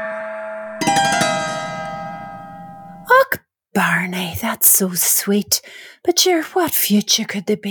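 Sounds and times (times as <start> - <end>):
gong struck and ringing: 0.8 - 3.1
speech: 3.8 - 7.6.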